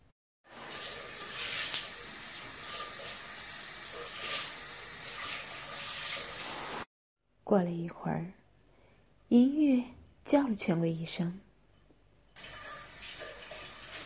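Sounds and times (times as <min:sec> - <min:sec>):
water running from a tap in a bathroom: 0:00.5 - 0:06.9, 0:12.4 - 0:14.0
speech: 0:07.5 - 0:08.4, 0:09.3 - 0:11.5.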